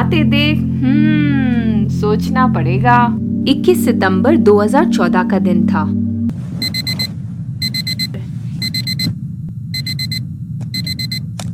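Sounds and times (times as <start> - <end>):
steady low rumble: 0.0 - 11.5
speech: 0.1 - 1.2, 2.0 - 6.0
digital alarm clock beeping: 6.6 - 9.1, 9.7 - 11.2.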